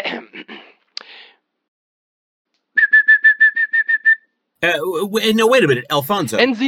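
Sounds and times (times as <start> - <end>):
yellow-tailed black cuckoo singing whistled notes: 2.7 - 4.4
speech: 4.6 - 6.6.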